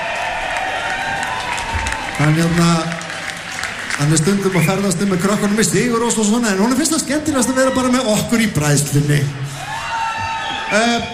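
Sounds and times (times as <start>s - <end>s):
audience applause at a concert: 0.0s - 7.0s
concert crowd noise: 0.0s - 11.1s
speech: 2.2s - 3.0s, 4.0s - 9.6s, 10.7s - 11.1s.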